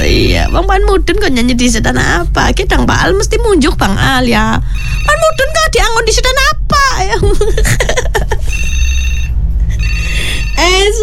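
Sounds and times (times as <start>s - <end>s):
speech: 0.4s - 8.7s, 10.0s - 11.0s
telephone ringing with an incoming call to a radio station: 4.7s - 6.0s, 8.4s - 11.0s
laughter: 7.2s - 8.5s.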